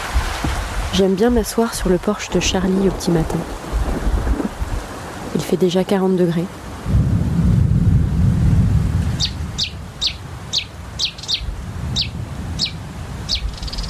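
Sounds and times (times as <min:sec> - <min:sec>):
wind rumble: 0:00.0 - 0:13.8
speech: 0:00.9 - 0:03.6, 0:05.5 - 0:07.0
bird chirping near a porch: 0:09.2 - 0:13.8.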